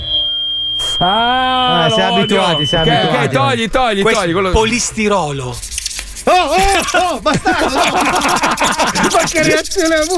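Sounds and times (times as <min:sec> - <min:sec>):
audio feedback squeal from the Larsen effect: 0:00.0 - 0:03.4
speech: 0:01.0 - 0:05.7, 0:06.3 - 0:10.1
laughter: 0:06.3 - 0:10.1.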